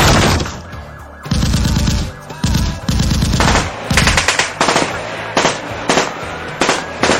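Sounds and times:
heavy machine-gun fire during a police shootout: 1.3 - 7.1.

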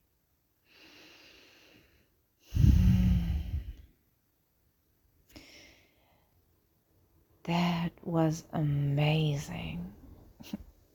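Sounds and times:
slow deep breathing: 0.6 - 4.0, 5.3 - 6.4
speech: 7.5 - 10.6.

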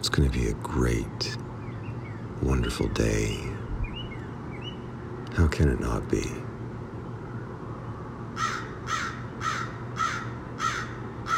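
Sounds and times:
speech: 0.0 - 1.3, 2.4 - 3.7, 5.4 - 6.4
low hum: 0.0 - 11.3
crow cawing: 8.4 - 11.3.

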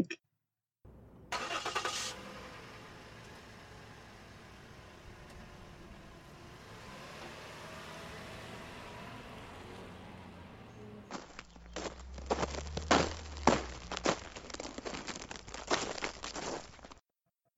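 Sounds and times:
speech: 0.0 - 0.2
pickup truck engine rumbling while parking: 0.9 - 17.0
quick run of footsteps approaching: 11.1 - 17.0.

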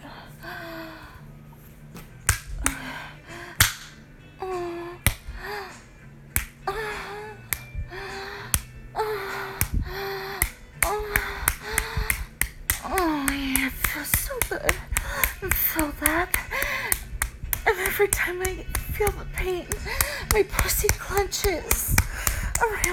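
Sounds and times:
hand slapping bare breasts: 1.9 - 22.9
person gasping and making breathy vocal sounds: 2.6 - 3.7, 6.7 - 13.8, 14.7 - 15.5, 16.2 - 17.1, 19.7 - 20.4, 21.9 - 22.6.

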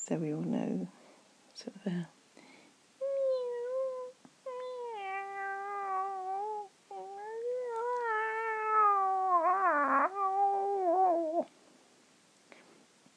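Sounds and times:
speech: 0.1 - 1.0, 1.6 - 2.2
cat meowing: 3.0 - 11.5.

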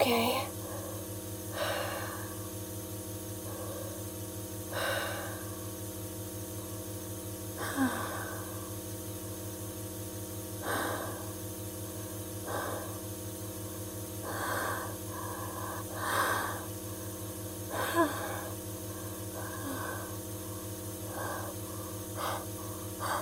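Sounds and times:
low steady hum: 0.0 - 23.2
deep breathing while inhaling gas: 0.6 - 2.6, 3.4 - 5.9, 10.6 - 23.2.

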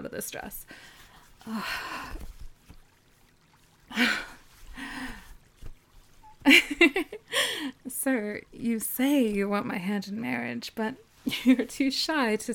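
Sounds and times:
spring water pouring and splashing as someone washes mud off: 0.1 - 9.5
speech: 0.2 - 2.3, 3.9 - 4.4, 6.4 - 12.5.

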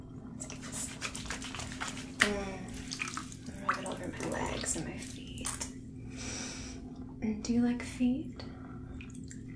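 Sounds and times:
bath water draining: 0.3 - 5.9, 8.9 - 9.5
water splashes and gurgles: 0.4 - 5.8
speech: 7.5 - 8.5.

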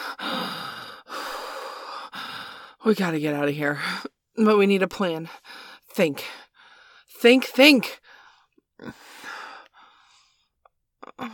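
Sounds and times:
panicked heavy breathing from a frightened person: 0.0 - 2.8, 5.3 - 7.1, 8.0 - 10.5
speech: 2.8 - 6.4, 7.2 - 8.0, 8.8 - 9.1.

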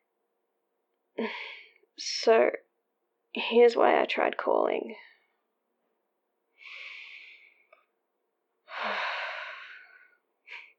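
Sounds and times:
speech: 1.2 - 2.6, 3.4 - 5.1
person leaving a voicemail taking a deep breath: 6.6 - 7.7, 8.7 - 10.7.

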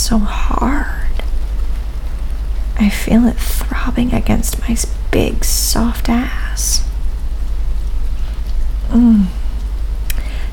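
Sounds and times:
low rumble: 0.0 - 10.5
speech: 0.1 - 1.0, 2.8 - 6.9, 8.9 - 9.4
heavy rain: 0.1 - 10.5
short falling vocal sound: 8.8 - 9.6.

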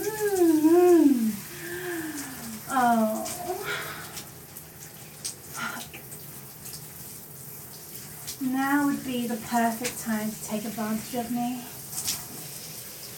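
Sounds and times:
hot shower water running: 0.0 - 13.1
person sighing: 0.6 - 2.5, 3.1 - 4.2
speech: 9.5 - 11.8.

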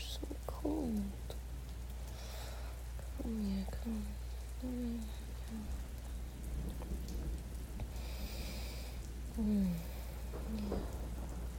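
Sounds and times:
heavy rain pouring: 0.0 - 11.5
low thunder rumble: 3.1 - 11.5
speech: 3.3 - 5.8.

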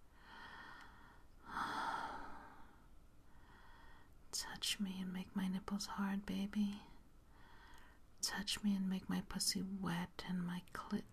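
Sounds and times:
person breathing faster and harder: 0.2 - 4.1, 7.3 - 8.0
speech: 4.6 - 6.9, 8.3 - 11.1.

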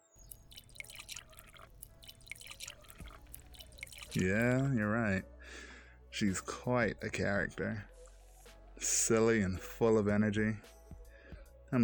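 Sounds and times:
liquid pouring into a glass in a gurgling trickle: 0.1 - 4.6
speech: 4.2 - 7.9, 8.8 - 10.8.

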